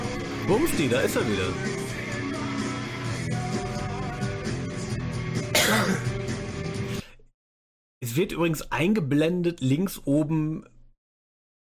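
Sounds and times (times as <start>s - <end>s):
music: 0.0s - 7.1s
speech: 0.5s - 1.8s, 8.2s - 10.7s
cough: 5.5s - 6.2s.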